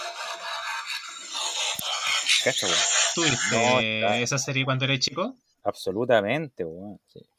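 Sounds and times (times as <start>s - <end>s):
motorized robot toy whirring and grinding as it transforms: 0.0s - 4.2s
speech: 2.4s - 7.3s.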